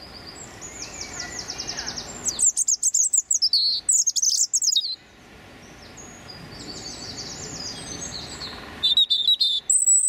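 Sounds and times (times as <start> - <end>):
male European robin Erithacus rubecula singing territorial song: 0.0 - 10.0.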